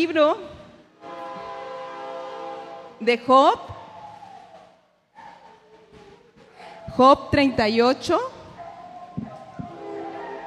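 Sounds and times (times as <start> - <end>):
speech: 0.0 - 0.5, 3.0 - 3.7, 6.9 - 8.3
passing train rumble: 0.0 - 10.4
passing train horn: 0.9 - 3.4, 9.7 - 10.4.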